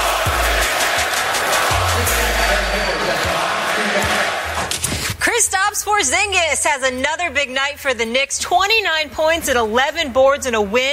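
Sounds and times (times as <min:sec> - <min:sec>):
packed arena crowd roaring and cheering: 0:00.0 - 0:04.8
speech: 0:06.0 - 0:10.9.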